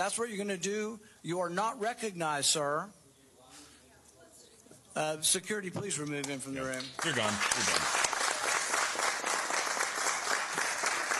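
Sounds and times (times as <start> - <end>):
speech: 0.0 - 3.0, 5.0 - 8.0
audience applause in a hearing room: 6.7 - 11.1.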